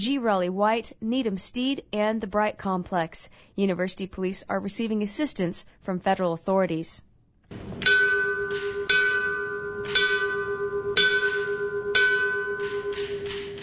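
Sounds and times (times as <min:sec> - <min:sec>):
speech: 0:00.0 - 0:08.0
final alarm bell ringing at firefighter memorial: 0:07.8 - 0:13.6.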